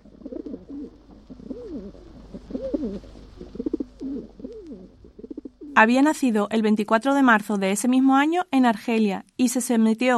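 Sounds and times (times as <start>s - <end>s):
pigeon cooing: 0.0s - 5.8s
speech: 5.8s - 10.1s.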